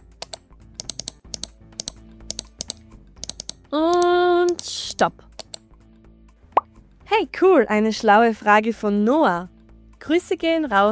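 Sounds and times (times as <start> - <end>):
rapid clicking from scrolling on a computer: 0.2 - 5.6
speech: 3.7 - 4.0, 4.6 - 5.3, 7.2 - 10.9.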